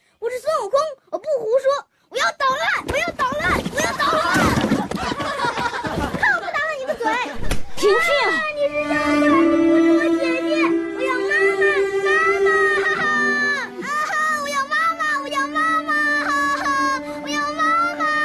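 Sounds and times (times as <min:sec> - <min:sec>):
people talking: 0:00.2 - 0:18.2
laughter: 0:03.8 - 0:07.4
young boy crying: 0:07.9 - 0:18.2.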